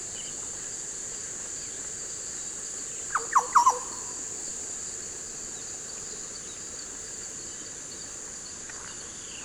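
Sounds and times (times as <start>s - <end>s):
Oriolus flavocinctus green oriole call: 3.1s - 4.2s.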